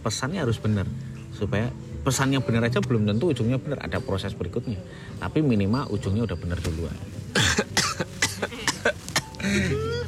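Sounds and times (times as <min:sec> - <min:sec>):
speech: 0:00.0 - 0:07.6, 0:09.5 - 0:09.9
harsh coughing: 0:07.3 - 0:10.0.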